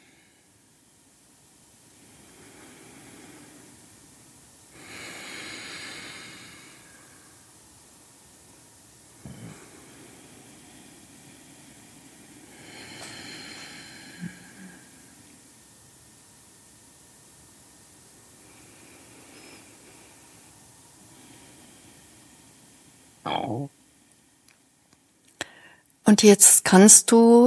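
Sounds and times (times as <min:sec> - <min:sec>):
quiet hiss: 0:00.0 - 0:27.4
slow deep breathing in and out: 0:01.8 - 0:03.9, 0:04.7 - 0:07.5, 0:09.2 - 0:15.5, 0:18.2 - 0:24.6, 0:25.4 - 0:25.9
speech: 0:23.3 - 0:23.8, 0:26.1 - 0:27.4.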